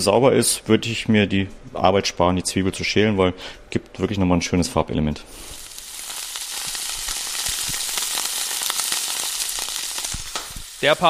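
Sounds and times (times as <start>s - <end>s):
speech: 0.0s - 5.5s, 10.8s - 11.0s
food sizzling in a hot frying pan: 5.3s - 11.0s.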